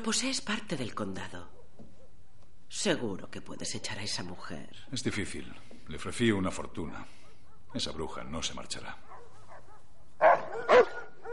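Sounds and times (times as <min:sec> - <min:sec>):
speech: 0:00.0 - 0:01.6, 0:02.7 - 0:09.1
dog barking: 0:07.1 - 0:07.8, 0:09.0 - 0:11.3
dog yelp: 0:09.0 - 0:11.3.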